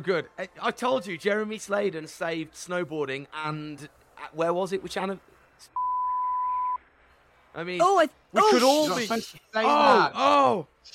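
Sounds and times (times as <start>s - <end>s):
speech: 0.0s - 5.8s, 7.6s - 10.9s
steady flat censor beep: 5.8s - 6.8s.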